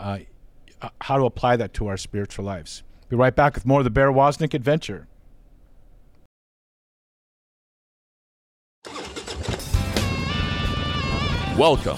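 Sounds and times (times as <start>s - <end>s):
speech: 0.0s - 5.1s, 11.6s - 11.9s
motorcycle engine starting and revving: 8.8s - 11.6s.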